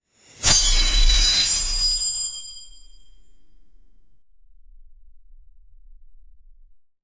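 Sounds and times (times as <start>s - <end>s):
sword swinging fast in combat: 0.3s - 2.4s.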